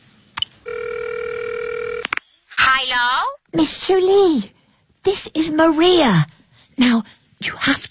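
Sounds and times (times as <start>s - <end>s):
continuous electronic telephone ringing tone: 0.7s - 2.1s
speech: 3.5s - 7.8s.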